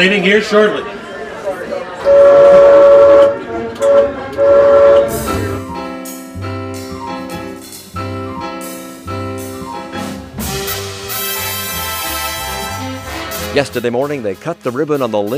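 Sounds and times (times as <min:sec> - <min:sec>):
speech: 0:00.0 - 0:01.0, 0:13.6 - 0:15.3
faint murmur of voices: 0:00.0 - 0:05.8
light rail train horn tones: 0:02.0 - 0:06.0.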